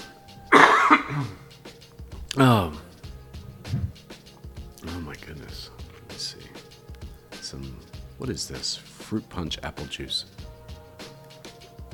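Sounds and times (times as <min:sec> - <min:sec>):
person coughing: 0:00.6 - 0:01.4
throat clearing: 0:00.6 - 0:01.5
speech: 0:01.1 - 0:01.4, 0:02.4 - 0:02.8, 0:08.2 - 0:10.4.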